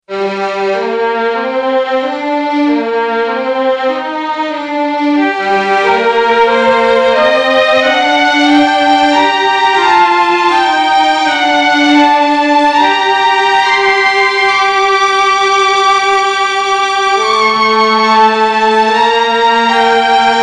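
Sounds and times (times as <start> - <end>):
classic string instruments: 0.0 - 20.4.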